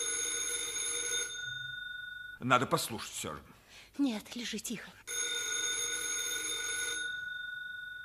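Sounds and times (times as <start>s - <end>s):
telephone bell ringing: 0.0s - 2.5s, 5.1s - 8.0s
speech: 2.4s - 5.2s.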